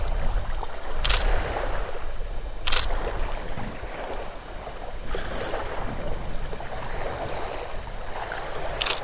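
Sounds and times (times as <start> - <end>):
pontoon boat moving at speed across open water: 0.0 - 9.0
camera clicks: 1.0 - 1.3, 2.6 - 3.0, 8.8 - 9.0.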